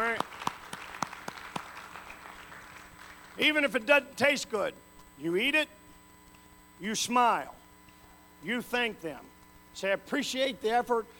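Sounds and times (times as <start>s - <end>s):
scattered hand claps from an audience: 0.0s - 3.7s
speech: 3.4s - 5.8s, 6.8s - 7.6s, 8.4s - 11.1s.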